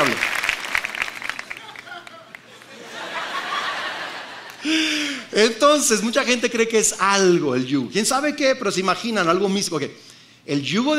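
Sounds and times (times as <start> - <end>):
audience clapping: 0.0 - 3.6
people chuckling: 1.4 - 5.2
speech: 5.4 - 10.9.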